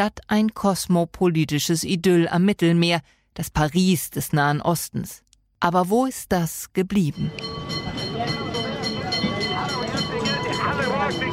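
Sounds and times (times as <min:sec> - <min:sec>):
speech: 0:00.0 - 0:08.4
tram rattling along a street: 0:07.1 - 0:11.3
metallic ringing: 0:07.2 - 0:11.3
faint voices murmuring: 0:07.3 - 0:11.3.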